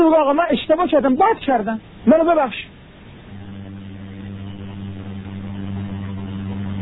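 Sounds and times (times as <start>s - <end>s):
speech: 0.0s - 2.7s
motorcycle engine droning outside: 3.2s - 6.8s.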